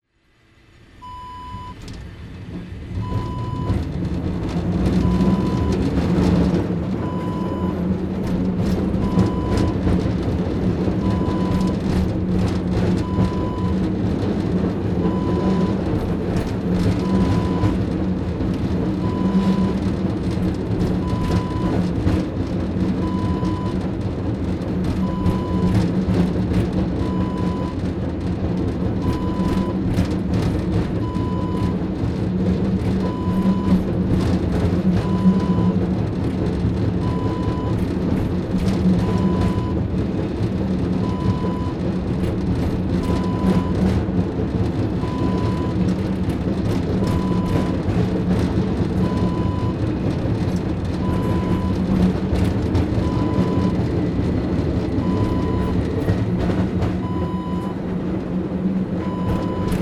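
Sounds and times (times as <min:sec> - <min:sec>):
tram ride: 0:00.1 - 0:59.8.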